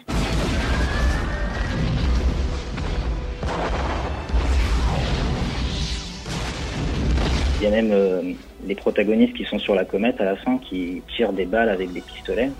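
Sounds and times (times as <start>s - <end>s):
sharper cinematic explosion blasts: 0.0s - 8.6s
loud cinematic explosion effects rumbling: 0.0s - 9.1s
speech: 7.6s - 12.5s.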